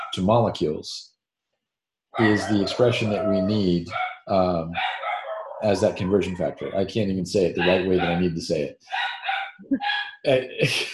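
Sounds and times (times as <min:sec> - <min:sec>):
speech: 0:00.1 - 0:01.1, 0:02.2 - 0:05.0, 0:05.6 - 0:10.9
laughter: 0:00.2 - 0:00.9, 0:02.2 - 0:04.8, 0:05.6 - 0:08.7, 0:10.3 - 0:10.9
dog whining: 0:02.2 - 0:04.1, 0:04.8 - 0:06.8, 0:07.6 - 0:08.3
dog barking and yipping at a leaf blower: 0:02.2 - 0:06.8, 0:07.6 - 0:08.3, 0:08.9 - 0:10.1.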